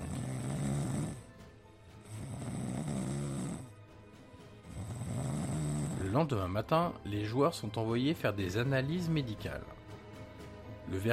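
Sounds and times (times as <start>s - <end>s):
people snoring in an airplane cabin: 0.0s - 3.9s, 4.6s - 6.3s
speech: 6.2s - 9.8s, 10.9s - 11.1s.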